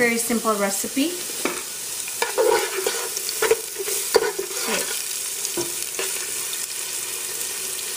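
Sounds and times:
speech: 0:00.0 - 0:01.6
onions sizzling in hot oil: 0:00.0 - 0:07.9
knocks and scrapes of stirring in the pan: 0:01.4 - 0:06.2.

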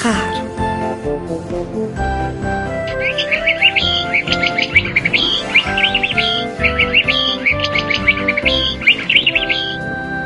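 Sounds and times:
soft music: 0:00.0 - 0:10.2
canary singing in warbling trills and chirps: 0:02.2 - 0:10.2.

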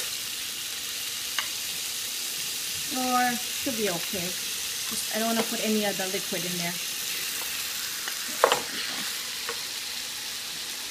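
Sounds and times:
chicken pieces frying in olive oil in a pan: 0:00.0 - 0:10.8
speech: 0:02.9 - 0:06.9.

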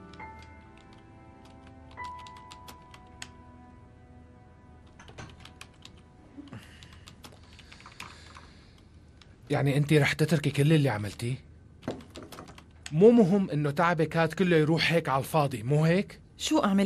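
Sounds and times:
typing a message on a computer keyboard: 0:00.0 - 0:03.3, 0:04.9 - 0:08.6, 0:11.8 - 0:13.0
speech: 0:09.5 - 0:11.5, 0:12.9 - 0:16.8.

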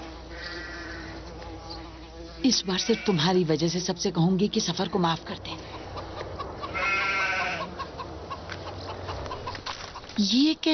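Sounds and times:
speech: 0:02.4 - 0:05.8, 0:10.2 - 0:10.7
goat or sheep bleating: 0:02.7 - 0:03.3, 0:06.7 - 0:07.7.

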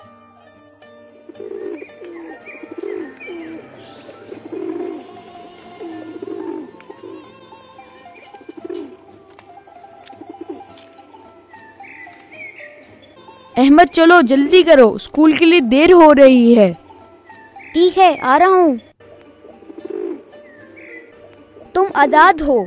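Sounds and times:
pigeons cooing as they are given grain: 0:01.3 - 0:09.2, 0:10.0 - 0:11.2, 0:19.1 - 0:22.2
speech: 0:13.6 - 0:16.8, 0:17.9 - 0:18.9, 0:22.0 - 0:22.6.

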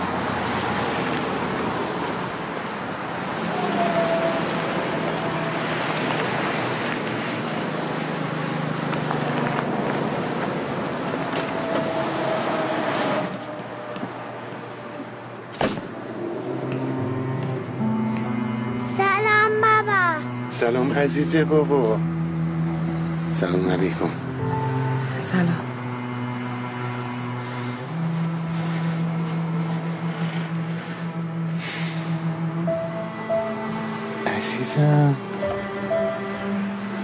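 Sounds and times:
engine and road noise inside a moving bus: 0:00.0 - 0:37.0
speech: 0:20.6 - 0:22.1, 0:23.4 - 0:24.2, 0:25.2 - 0:25.7, 0:34.6 - 0:35.3.

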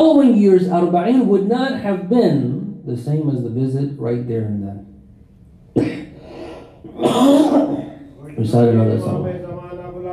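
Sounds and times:
speech: 0:00.0 - 0:04.9, 0:05.8 - 0:06.0, 0:07.0 - 0:09.4
person coughing harshly: 0:05.7 - 0:08.1.

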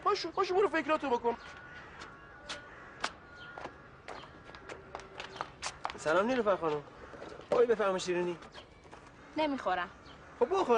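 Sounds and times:
speech: 0:00.1 - 0:01.7, 0:06.0 - 0:08.6, 0:09.4 - 0:10.7
footsteps of someone walking at an unhurried pace: 0:01.4 - 0:09.2.

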